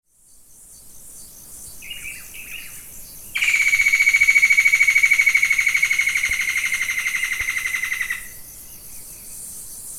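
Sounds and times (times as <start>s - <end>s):
Batara cinerea: 1.8s - 9.4s.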